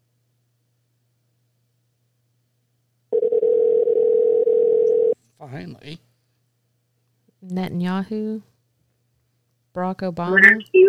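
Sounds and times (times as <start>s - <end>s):
telephone dial tone on a malfunctioning phone: 3.2s - 5.2s
speech: 5.4s - 6.1s, 7.4s - 8.5s, 9.8s - 10.8s.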